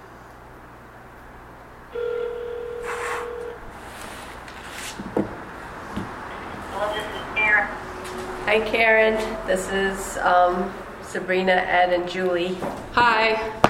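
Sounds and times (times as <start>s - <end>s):
telephone dial tone: 1.9s - 3.6s
speech: 8.5s - 13.6s.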